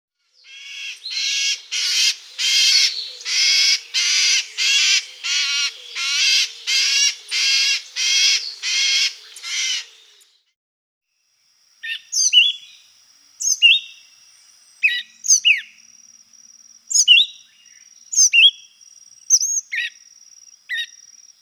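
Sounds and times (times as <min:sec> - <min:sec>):
Brown Trembler calling in Guadeloupe: 0:00.5 - 0:10.2, 0:11.8 - 0:21.3.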